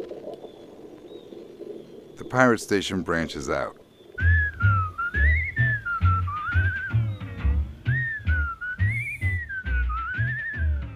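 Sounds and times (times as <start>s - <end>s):
speech: 2.3s - 3.8s
person whistling a wavering melody with vibrato: 4.2s - 10.9s.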